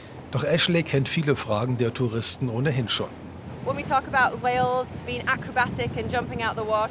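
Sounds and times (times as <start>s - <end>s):
water noise beneath a moving boat at sea: 0.0s - 6.9s
speech: 0.3s - 6.9s
blustery headwind on a moving boat at sea: 2.9s - 6.9s.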